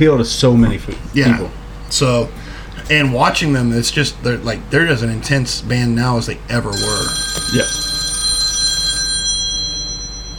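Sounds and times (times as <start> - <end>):
speech: 0.0 - 7.8
hotline telephone ringing: 1.0 - 10.3.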